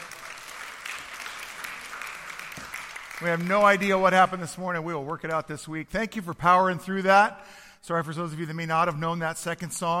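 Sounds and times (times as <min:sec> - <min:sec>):
audience applause at a live event: 0:00.0 - 0:04.0
speech: 0:03.2 - 0:09.9.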